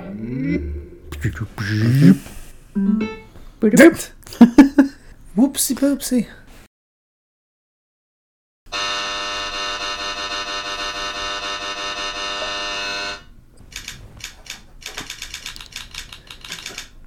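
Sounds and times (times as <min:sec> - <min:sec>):
speech: 0:00.2 - 0:04.6, 0:05.4 - 0:06.4
loud steady game buzzer blaring: 0:08.7 - 0:13.3.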